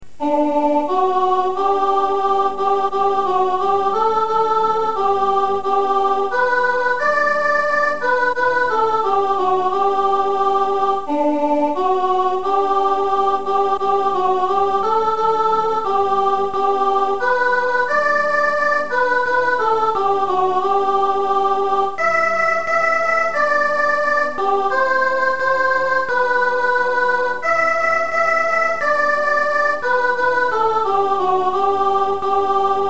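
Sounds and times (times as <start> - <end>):
soprano singing a Christmas carol: 0.2 - 32.8.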